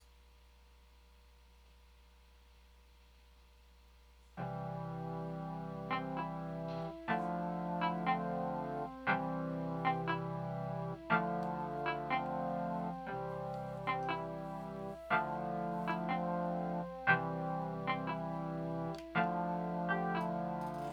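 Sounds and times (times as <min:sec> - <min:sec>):
lo-fi beats: 0:04.4 - 0:20.9.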